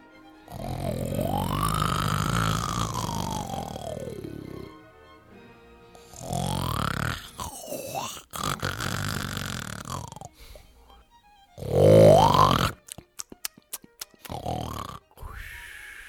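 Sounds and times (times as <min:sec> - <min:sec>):
loud deep snoring of a giant sleeping in a chair: 0:00.4 - 0:04.8, 0:06.0 - 0:10.6, 0:11.6 - 0:12.9, 0:14.2 - 0:15.4
sharp snort: 0:00.4 - 0:04.8, 0:06.0 - 0:11.0, 0:11.6 - 0:16.0.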